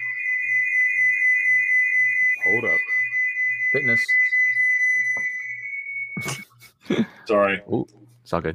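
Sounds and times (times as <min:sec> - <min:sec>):
piercing microphone feedback tone: 0:00.0 - 0:06.5
speech: 0:02.5 - 0:02.9, 0:03.7 - 0:04.3, 0:06.2 - 0:08.5.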